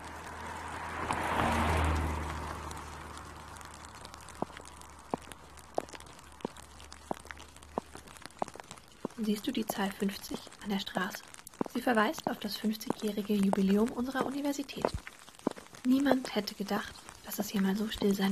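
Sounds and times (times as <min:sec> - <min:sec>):
car rushing past on a street: 0:00.0 - 0:05.1
footsteps on pavement: 0:00.0 - 0:18.3
speech: 0:09.2 - 0:15.0, 0:15.8 - 0:18.3.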